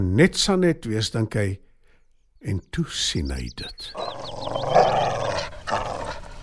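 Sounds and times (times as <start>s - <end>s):
speech: 0.0s - 1.6s, 2.4s - 4.0s
faint chirping birds: 0.4s - 6.4s
dog snarling and growling: 4.0s - 6.4s.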